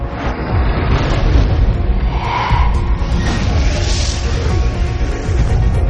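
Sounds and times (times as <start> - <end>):
cinematic big bang explosion with deep roaring rumble: 0.1 - 5.8
hissing whooshing sweeps: 1.7 - 5.4.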